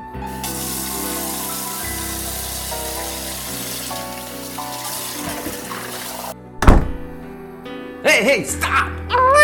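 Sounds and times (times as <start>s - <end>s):
warm tap water running over a bottle: 0.2s - 6.4s
sharp thunk: 6.6s - 7.2s
speech: 8.1s - 9.3s.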